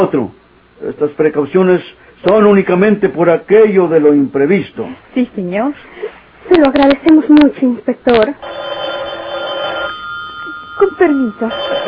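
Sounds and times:
speech: 0.0s - 8.8s, 10.8s - 11.8s
room noise: 0.0s - 11.8s
telephone bell ringing loudly: 8.4s - 11.8s
faint steady tone: 9.7s - 11.8s.

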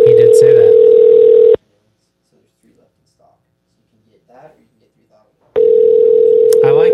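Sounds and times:
phone call ringing out over a speakerphone: 0.0s - 1.6s, 5.6s - 6.9s.

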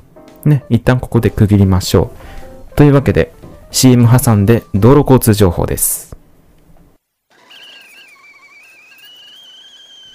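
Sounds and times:
speech: 0.2s - 6.1s
thin wavering high whistle of steam: 7.4s - 10.1s.

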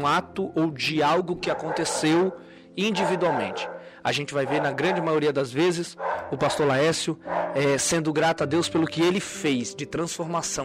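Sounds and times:
speech: 0.0s - 10.6s
dog barking and yipping: 1.4s - 5.3s, 5.9s - 7.8s.

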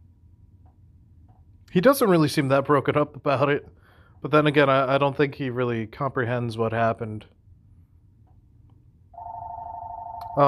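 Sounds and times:
speech: 1.7s - 7.4s
telephone ringing with a steady electronic tone: 9.2s - 10.4s.

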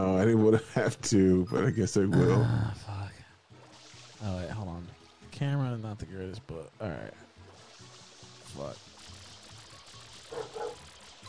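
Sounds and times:
speech: 0.0s - 2.9s, 4.2s - 7.2s, 8.5s - 8.9s
steady hiss: 0.0s - 11.2s
dog barks: 10.3s - 10.8s.

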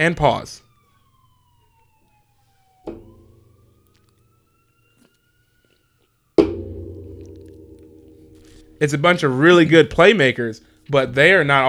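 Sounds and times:
speech: 0.0s - 0.6s, 8.8s - 11.6s
police siren: 0.0s - 11.6s.

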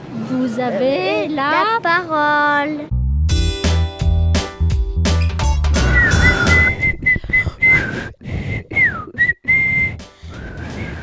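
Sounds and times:
speech: 0.3s - 3.0s
louder choppy harmonic sound: 3.4s - 7.4s
two teenage girls trying to whistle with breathy unsteady tones: 5.8s - 10.1s.

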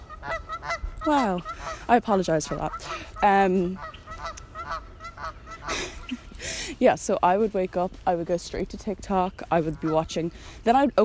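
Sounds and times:
nasal duck-like honking: 0.0s - 1.8s, 2.5s - 6.1s
speech: 1.0s - 4.0s, 6.8s - 11.0s.

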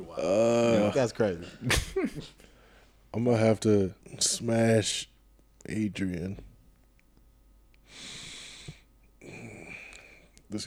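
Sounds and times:
speech: 0.0s - 2.5s, 3.1s - 6.5s
man breathing heavily: 7.9s - 10.3s.

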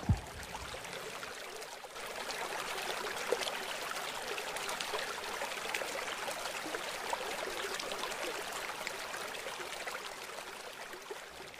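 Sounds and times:
river water flowing over rocks: 0.0s - 11.5s.

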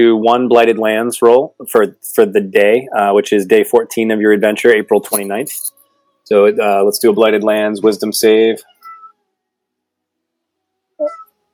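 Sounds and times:
speech: 0.0s - 8.8s
cat meowing: 8.8s - 9.1s, 11.0s - 11.3s.

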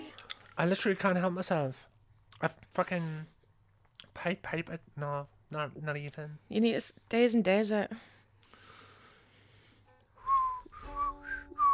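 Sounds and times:
speech: 0.6s - 3.3s, 4.2s - 8.1s
person whistling a short melodic phrase: 10.2s - 11.7s.

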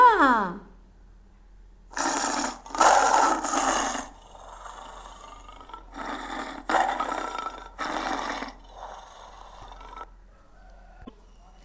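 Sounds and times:
tiger roaring and snarling: 1.9s - 10.1s
tiger growling breaths: 1.9s - 11.6s.

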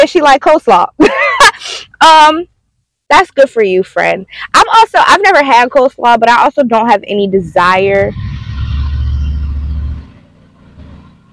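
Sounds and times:
speech: 0.0s - 2.5s, 3.1s - 8.3s
car engine rumbling and revving: 7.2s - 11.3s.

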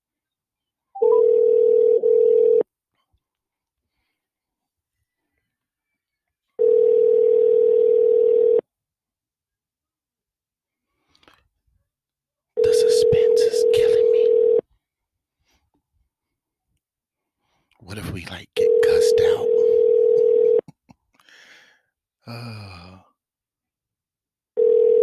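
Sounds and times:
outgoing phone call ringback tones: 1.0s - 2.6s, 6.6s - 8.6s, 12.6s - 14.6s, 18.6s - 20.6s, 24.6s - 25.0s.

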